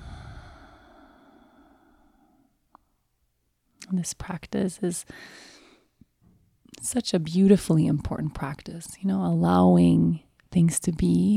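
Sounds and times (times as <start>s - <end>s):
deep breath exhaled fully during a breathing practice: 0.0s - 2.5s
speech: 3.9s - 5.5s, 6.8s - 11.3s.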